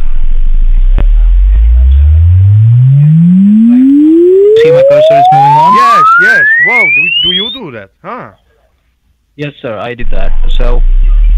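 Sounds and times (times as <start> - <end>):
loud exponential sine-wave test sweep: 0.0 - 7.6
speech: 6.7 - 8.4, 9.4 - 11.2.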